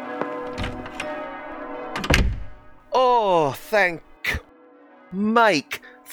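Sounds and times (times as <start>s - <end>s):
heavy rectory door thudding shut: 0.4s - 4.2s
soft knocks: 0.4s - 4.2s
speech: 3.2s - 4.1s, 5.1s - 6.1s.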